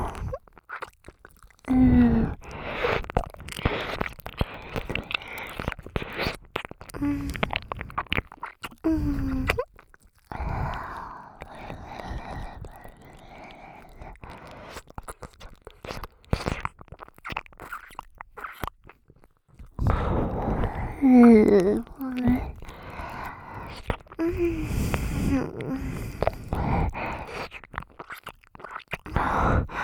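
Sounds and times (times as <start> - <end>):
wet mouth sounds imitating eating an ear: 0.0 - 29.8
quiet voice: 19.9 - 22.7, 23.6 - 26.4.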